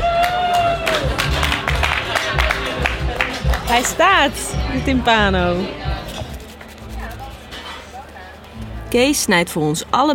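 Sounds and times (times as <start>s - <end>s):
high whoop: 0.0s - 1.3s
cheering voices: 0.0s - 3.4s
small group applauding: 0.0s - 4.0s
speech: 3.7s - 5.9s, 8.9s - 10.1s.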